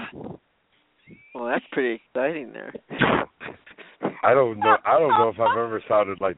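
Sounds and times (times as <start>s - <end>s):
speech: 1.5s - 3.2s, 4.3s - 6.3s
laughter: 3.0s - 5.8s
voice imitating a whirring blender making a smoothie: 4.6s - 5.6s.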